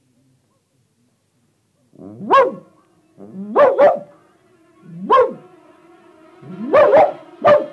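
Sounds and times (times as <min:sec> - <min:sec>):
large dog barking loudly: 0:02.1 - 0:02.8, 0:03.5 - 0:04.2, 0:05.0 - 0:05.5, 0:06.5 - 0:07.7.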